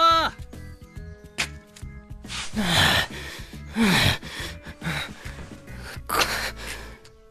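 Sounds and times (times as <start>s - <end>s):
person panting heavily out of breath from climbing: 2.4s - 7.2s
gasping inhales and exhales: 2.5s - 7.2s.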